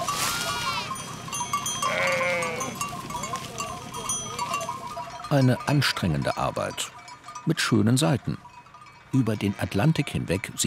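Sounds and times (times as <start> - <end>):
large flock of sheep bleating on a farm in northern Tenerife: 0.1 - 1.0, 1.8 - 3.7
speech: 5.3 - 8.5, 9.1 - 10.6.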